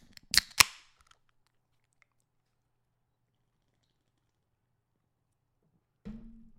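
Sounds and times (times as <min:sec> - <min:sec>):
beer can being cracked open: 0:00.0 - 0:01.3.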